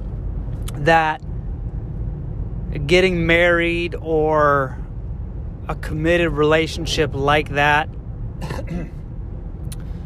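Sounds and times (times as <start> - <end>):
steady low rumble: 0.0 - 10.0
speech: 0.8 - 1.3, 2.8 - 4.8, 5.7 - 9.0
person clearing throat into the mic: 8.4 - 9.0.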